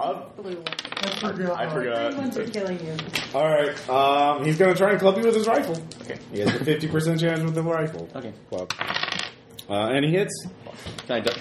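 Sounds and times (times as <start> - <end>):
speech: 0.1 - 11.3
dice clattering as they are rolled during a tabletop role-playing game: 8.7 - 9.4.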